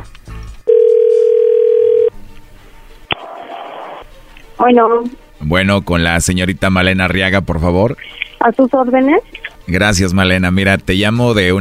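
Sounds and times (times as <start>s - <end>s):
telephone dial tone: 0.7s - 2.1s
speech: 4.6s - 11.6s.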